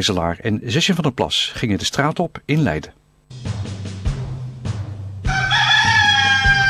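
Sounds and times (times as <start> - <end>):
speech: 0.0 - 3.7
rooster crowing: 5.3 - 6.6.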